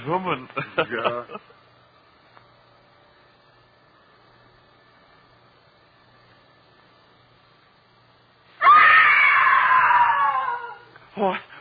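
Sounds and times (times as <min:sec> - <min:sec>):
speech: 0:00.0 - 0:01.6
woman screaming: 0:08.6 - 0:10.9.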